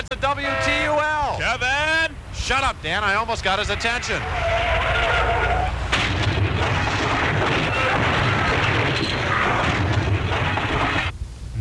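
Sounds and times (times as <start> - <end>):
speech: 0.2 - 1.7, 2.5 - 4.8
car crash sound effect: 4.0 - 11.1.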